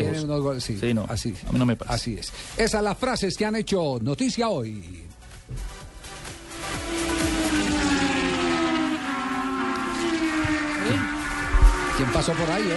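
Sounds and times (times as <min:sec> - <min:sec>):
speech: 0:00.2 - 0:05.7, 0:12.0 - 0:12.7
race car engine roaring: 0:05.9 - 0:12.7.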